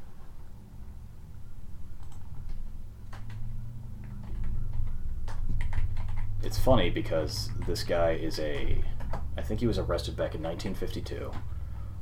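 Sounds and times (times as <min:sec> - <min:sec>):
steady low hum: 0:00.0 - 0:12.0
computer mouse clicking: 0:01.9 - 0:03.4, 0:04.0 - 0:06.3
speech: 0:06.4 - 0:12.0.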